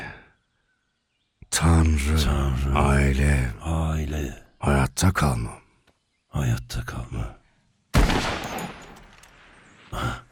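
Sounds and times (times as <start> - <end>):
speech: 1.6 - 5.6, 6.3 - 7.4, 9.9 - 10.2
video game gunshot fired while hunting: 8.0 - 9.2.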